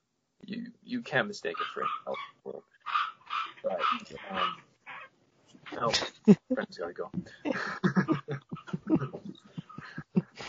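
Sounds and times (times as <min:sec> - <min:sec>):
speech: 0:00.5 - 0:02.6, 0:03.7 - 0:04.7, 0:05.8 - 0:09.3
dog yapping: 0:01.6 - 0:05.1
laughter: 0:05.8 - 0:10.4.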